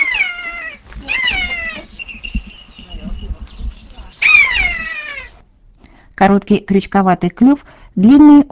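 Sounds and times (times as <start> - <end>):
young common buzzard giving plaintive mewing cries in an aviary: 0.0 - 2.0, 4.2 - 5.4
low rumbling: 0.0 - 5.7
speech: 6.2 - 8.5.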